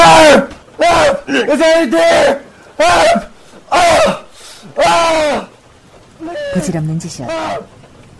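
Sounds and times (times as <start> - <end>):
man screaming frantically after gag removed: 0.0 - 5.6, 6.2 - 6.7, 7.3 - 7.7
speech: 1.3 - 5.5, 6.6 - 7.8
man gasping: 4.3 - 4.8.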